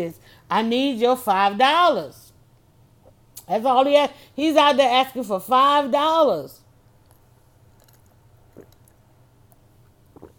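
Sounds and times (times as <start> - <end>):
speech: 0.0 - 2.2, 3.5 - 6.6
sipping homemade lemonade: 8.5 - 8.9, 10.1 - 10.3.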